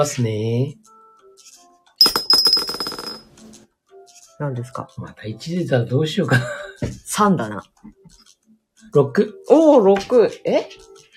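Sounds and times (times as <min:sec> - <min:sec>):
speech: 0:00.0 - 0:01.5, 0:04.4 - 0:08.0, 0:08.9 - 0:10.9
dice rattling and tumbling across a hard surface: 0:02.0 - 0:03.2.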